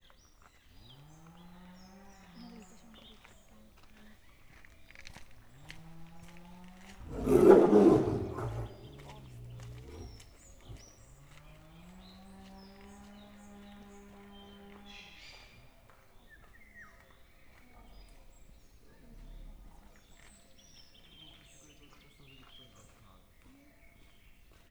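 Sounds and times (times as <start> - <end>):
Bengal tiger calling after a visitor at the Miskolc zoo: 7.0 - 10.2.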